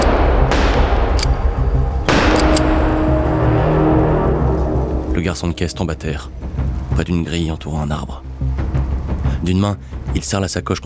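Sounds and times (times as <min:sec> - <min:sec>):
pistol shots: 0:00.0 - 0:03.2
dense loud rumbling background: 0:00.0 - 0:10.2
speech: 0:05.3 - 0:08.6, 0:09.4 - 0:10.8.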